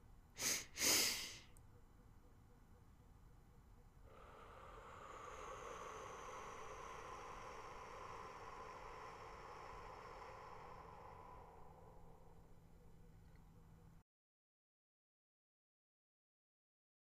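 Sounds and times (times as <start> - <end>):
breathy bursts: 0.4 - 1.4, 4.1 - 13.0
slow deep inhalation in a guided breathing exercise: 0.4 - 1.5, 4.0 - 13.4.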